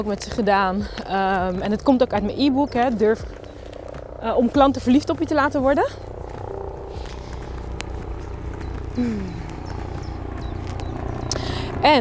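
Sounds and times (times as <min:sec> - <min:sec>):
speech: 0:00.0 - 0:03.4, 0:04.2 - 0:06.1, 0:09.0 - 0:09.4
helicopter rotor thrum: 0:00.0 - 0:11.9
falling whine: 0:03.2 - 0:11.9.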